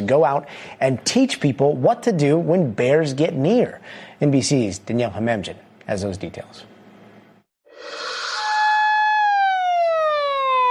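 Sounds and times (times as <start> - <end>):
speech: 0.1 - 6.7
police siren blaring on a school campus in Japan: 8.0 - 10.6.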